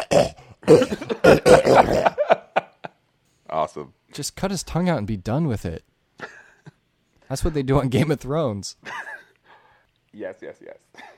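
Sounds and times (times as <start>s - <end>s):
speech: 0.0s - 1.4s, 3.8s - 5.9s, 7.3s - 9.0s, 10.3s - 11.1s
voice imitating a gross wet hacking cough: 0.0s - 2.2s.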